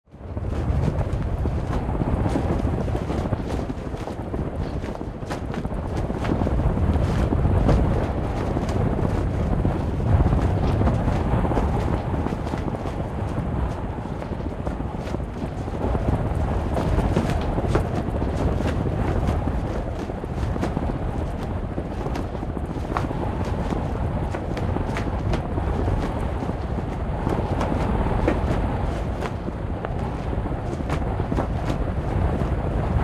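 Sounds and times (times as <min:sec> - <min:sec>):
sail flapping: 0:00.0 - 0:33.0.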